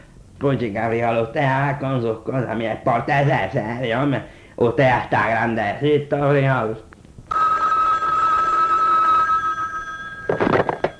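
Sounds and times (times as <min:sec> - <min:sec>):
speech: 0:00.4 - 0:06.9
telephone ringing with electronic tone: 0:07.3 - 0:10.9.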